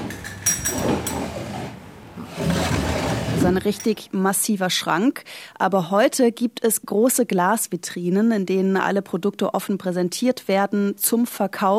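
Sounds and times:
small wooden drawers of a pharmacy cabinet sliding open and shut: 0.7 - 3.8
speech: 3.4 - 11.7.

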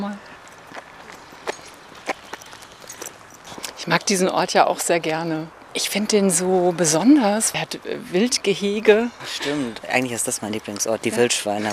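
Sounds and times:
footsteps crunching outdoors at walking pace: 0.2 - 4.0
speech: 3.9 - 11.7.

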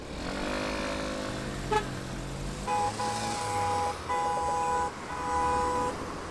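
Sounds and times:
steady road traffic rumble in Berlin heard while cycling: 0.0 - 6.3
vehicle engine passing a cyclist in Berlin: 0.0 - 6.3
sustained car horn honks in Berlin: 1.7 - 1.9, 2.7 - 6.0.

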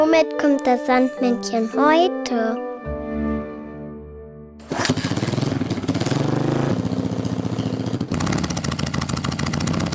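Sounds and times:
speech: 0.1 - 2.6
motorcycle engine idling and revving: 4.6 - 9.9.

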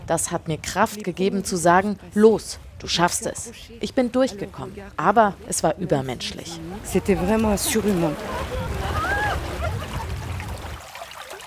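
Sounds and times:
speech: 0.1 - 9.0
stream babbling past a meeting point in the village of Champs-Secret, Normandie-Maine nature park: 0.7 - 11.4
laughter: 6.5 - 11.2.

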